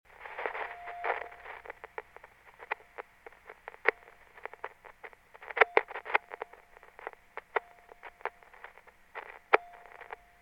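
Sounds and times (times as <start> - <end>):
distortion crackles: 0.0 - 10.4.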